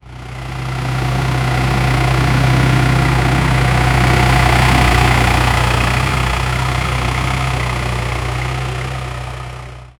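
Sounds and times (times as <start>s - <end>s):
tractor in rural setting: 0.0s - 9.9s.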